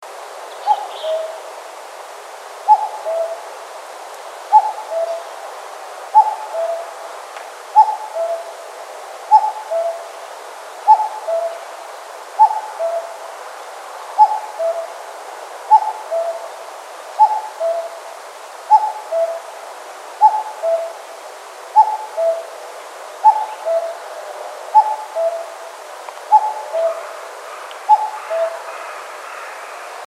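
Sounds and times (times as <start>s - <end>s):
Cuculus canorus: 0.6s - 1.4s, 2.7s - 3.4s, 4.5s - 5.3s, 6.2s - 6.9s, 7.8s - 8.6s, 9.3s - 10.1s, 10.9s - 11.6s, 12.4s - 13.2s, 14.2s - 15.0s, 15.7s - 16.5s, 17.2s - 18.0s, 18.7s - 19.5s, 20.2s - 21.0s, 21.8s - 22.5s, 23.2s - 24.0s, 24.7s - 25.6s, 26.3s - 30.0s.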